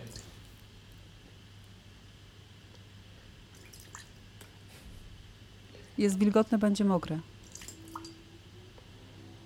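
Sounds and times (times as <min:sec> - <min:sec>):
steady low hum: 0:00.0 - 0:09.4
speech: 0:06.0 - 0:07.3
water dripping: 0:07.4 - 0:08.2.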